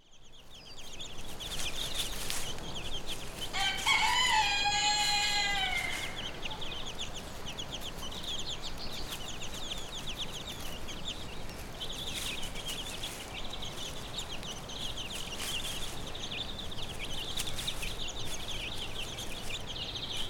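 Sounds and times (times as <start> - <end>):
chicks giving high thin peeps: 0.0 - 20.2
chicken hen giving a drawn-out harmonic call: 3.6 - 6.2.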